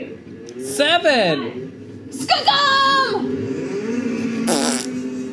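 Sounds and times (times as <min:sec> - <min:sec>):
speech: 0:00.8 - 0:01.6, 0:02.3 - 0:03.3
buzzy fart: 0:04.5 - 0:05.0.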